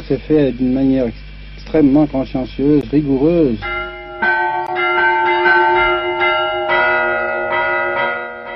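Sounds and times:
speech: 0.1s - 3.7s
church bell rung by a bell-ringer: 3.6s - 8.5s.

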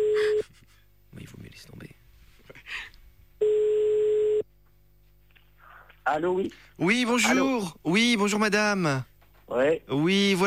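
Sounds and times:
telephone ringback tone while placing a call: 3.4s - 4.4s
speech: 6.1s - 10.4s.

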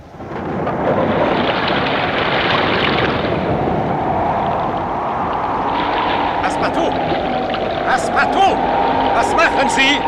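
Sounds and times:
rain aboard a ship at sea: 0.0s - 10.0s
surf in a gale at sea: 0.0s - 10.0s
wind in a November gale at sea: 0.0s - 10.0s
thunder in a violent storm at sea: 0.2s - 6.4s
speech: 8.2s - 10.0s.

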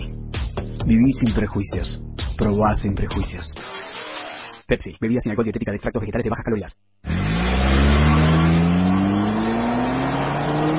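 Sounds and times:
speech: 0.9s - 3.8s, 4.7s - 6.9s
car engine revving at very high rpm: 7.1s - 10.7s.

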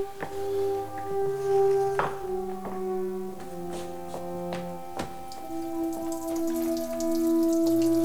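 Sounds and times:
soft sustained musical tones: 0.0s - 8.0s
urine splashing into water outdoors in winter: 5.4s - 8.0s.

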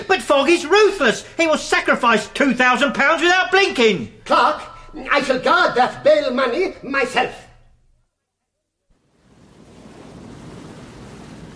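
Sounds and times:
speech: 0.1s - 7.4s
ocean waves at sea: 9.0s - 11.5s.

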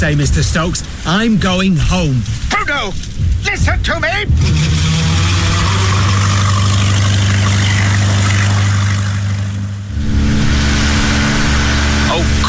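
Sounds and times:
speech: 0.0s - 5.0s
boat engine running: 4.2s - 12.4s.

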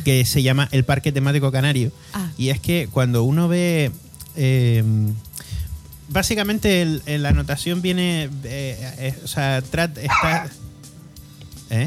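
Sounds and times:
speech: 0.0s - 5.3s, 6.1s - 10.6s
dog barking in short high-pitched bursts: 10.0s - 10.5s.

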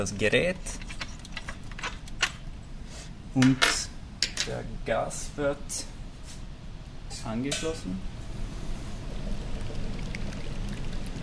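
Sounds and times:
speech: 0.0s - 0.9s, 3.4s - 6.0s, 7.2s - 8.1s
colourless liquid pouring through long tubes into laboratory device chambers: 8.4s - 11.2s.

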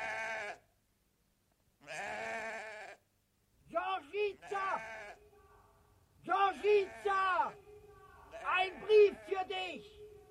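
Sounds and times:
sheep bleating while driven into a pen: 0.0s - 0.6s, 1.8s - 3.0s, 4.3s - 5.4s, 6.4s - 10.0s.

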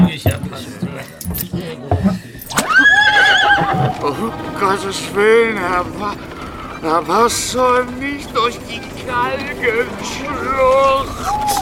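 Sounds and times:
horse whinnying beside a horse-drawn wagon: 2.4s - 4.2s
speech: 4.7s - 11.5s.

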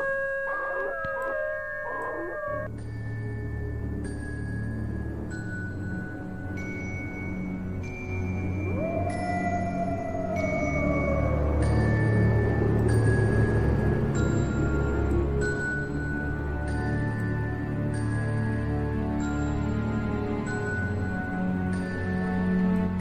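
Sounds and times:
man imitating a wolf's howl: 0.0s - 2.7s, 8.4s - 14.1s
low droning background: 0.0s - 23.0s.

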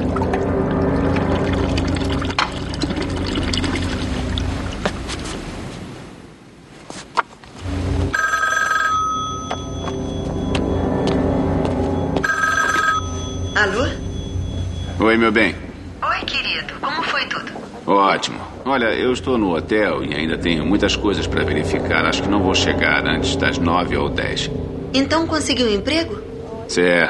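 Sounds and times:
steady noise: 0.0s - 27.0s
telephone ringing: 8.1s - 10.8s, 11.9s - 16.6s
speech: 15.1s - 15.6s, 17.9s - 27.0s.

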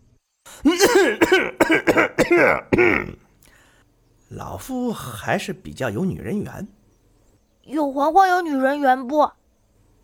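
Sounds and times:
performed coughing in a dramatized audio story: 0.6s - 3.2s
speech: 0.7s - 3.2s, 4.3s - 6.8s, 7.7s - 9.4s.

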